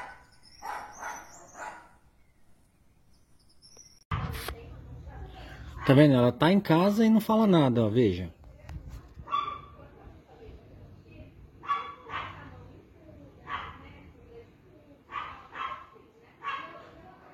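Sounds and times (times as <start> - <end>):
dog barking: 0.0 - 2.0, 9.2 - 9.8, 11.6 - 12.6, 13.4 - 13.9, 15.1 - 17.0
speech: 5.9 - 8.4.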